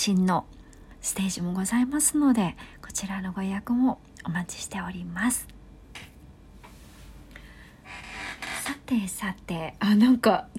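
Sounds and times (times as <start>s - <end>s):
speech: 0.0s - 6.1s, 8.9s - 10.5s
chair creaking from being sat on: 7.8s - 8.9s.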